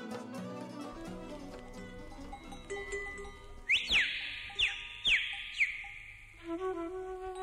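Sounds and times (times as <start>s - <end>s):
livestock bells clanking: 1.4s - 3.7s
person whistling: 3.7s - 6.9s.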